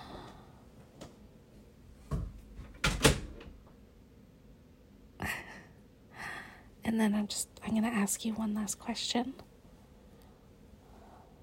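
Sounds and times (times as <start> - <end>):
door being pushed shut with a latch click: 2.1 - 3.6
speech: 6.9 - 9.5.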